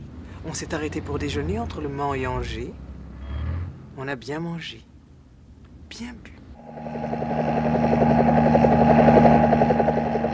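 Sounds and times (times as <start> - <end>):
speech: 0.4 - 2.9, 4.0 - 4.9, 5.9 - 7.4
police helicopter flying overhead: 6.6 - 10.3.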